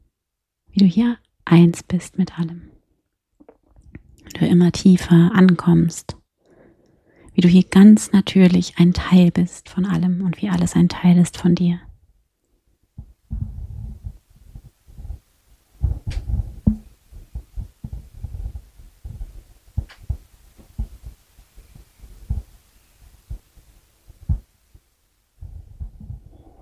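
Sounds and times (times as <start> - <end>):
speech: 0.8 - 2.8, 4.3 - 6.2, 7.4 - 11.9
slow heartbeat thudding: 13.0 - 22.6, 23.2 - 24.8, 25.4 - 26.6.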